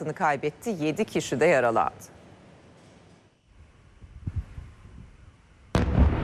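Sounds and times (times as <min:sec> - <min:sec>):
speech: 0:00.0 - 0:02.2
explosions from ballistic missiles during a night bombardment: 0:05.7 - 0:06.2
sudden loud blast rumbling heavily: 0:05.7 - 0:06.2.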